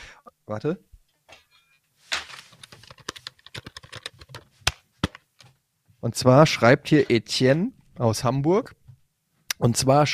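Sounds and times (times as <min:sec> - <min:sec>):
speech: 0:00.2 - 0:00.9, 0:06.0 - 0:08.8, 0:09.6 - 0:10.1
typing on a computer keyboard: 0:02.6 - 0:04.8.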